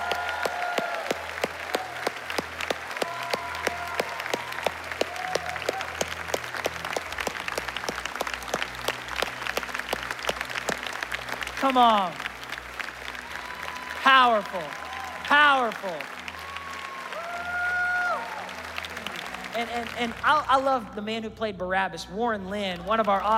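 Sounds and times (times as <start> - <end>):
scattered cheers and whoops: 0.0 - 6.4, 13.1 - 15.3, 16.1 - 19.4
large crowd applauding: 0.0 - 21.0, 22.5 - 23.3
speech: 11.7 - 12.2, 14.0 - 16.1, 19.6 - 23.3.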